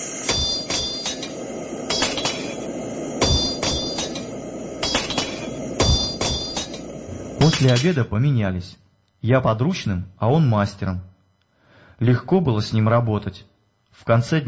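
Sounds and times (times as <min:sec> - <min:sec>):
low noise: 0:00.0 - 0:14.4
hammer blows on hot metal on an anvil at a forge: 0:00.2 - 0:07.9
speech: 0:07.6 - 0:11.1, 0:12.0 - 0:14.4.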